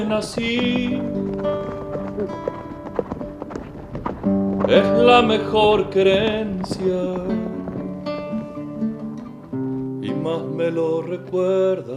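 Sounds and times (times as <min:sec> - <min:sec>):
speech: 0:00.0 - 0:02.6, 0:04.7 - 0:07.4, 0:10.2 - 0:11.9
horse hooves clip-clopping in open country of northeastern Germany: 0:00.0 - 0:11.7.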